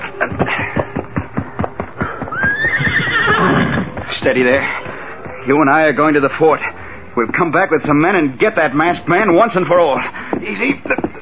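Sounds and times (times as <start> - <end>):
horse hooves clip-clopping: 0.0 - 11.1
horse whinnying: 2.2 - 4.0
speech: 4.2 - 4.8, 5.4 - 11.1.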